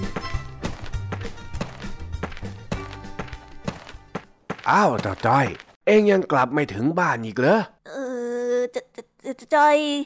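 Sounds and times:
footsteps of an older man walking past on his way to a shop: 0.0s - 5.8s
speech: 4.7s - 7.8s, 8.7s - 10.0s.

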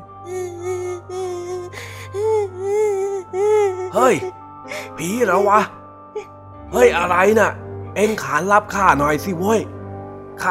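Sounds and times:
speech: 0.2s - 1.2s, 4.0s - 4.4s, 5.0s - 5.8s, 6.7s - 9.8s
faint child crying in wavering wails from the direction of a door: 0.2s - 4.4s.

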